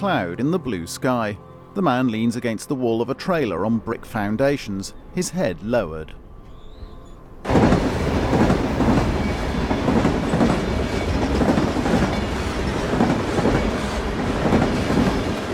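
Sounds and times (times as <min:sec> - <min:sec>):
speech: 0:00.0 - 0:06.2
train rumbling past: 0:02.8 - 0:15.5
train wheels clattering on the tracks: 0:06.4 - 0:15.5.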